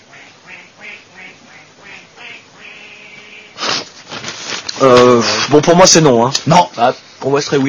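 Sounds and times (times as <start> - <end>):
duck quacking: 0.0 - 3.9
speech: 4.8 - 7.6.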